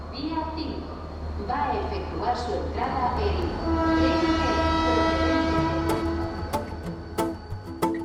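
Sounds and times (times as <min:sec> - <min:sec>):
speech: 0:00.2 - 0:05.1
train horn blaring at railway station: 0:03.5 - 0:07.9.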